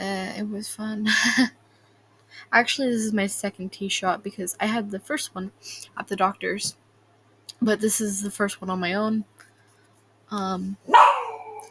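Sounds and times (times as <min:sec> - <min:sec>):
speech: 0:00.4 - 0:01.6, 0:02.3 - 0:06.8, 0:07.6 - 0:09.4, 0:10.3 - 0:11.1
female pet dog howling: 0:10.9 - 0:11.6.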